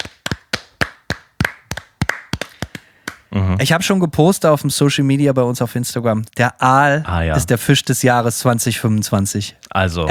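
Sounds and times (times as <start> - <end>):
sharp hand claps by one person: 0.0 - 3.3
speech: 3.3 - 10.0.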